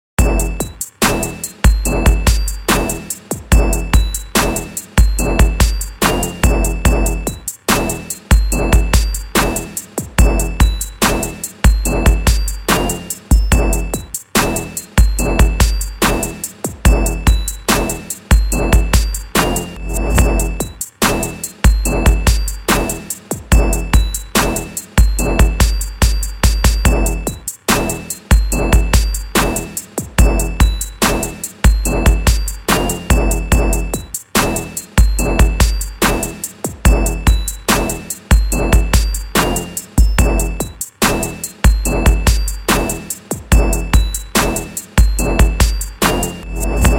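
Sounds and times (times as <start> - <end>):
looped beat: 0.2 - 46.9.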